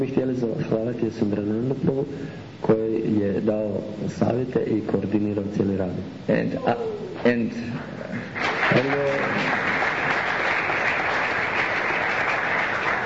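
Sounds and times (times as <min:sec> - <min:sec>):
speech: 0:00.0 - 0:09.8
large audience applause: 0:08.3 - 0:13.0.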